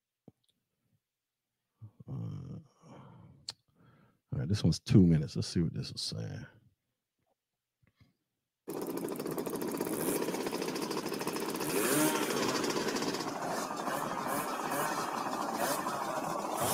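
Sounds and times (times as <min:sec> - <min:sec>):
speech: 0:04.5 - 0:06.6
several motorcycle engines revving: 0:08.7 - 0:16.7.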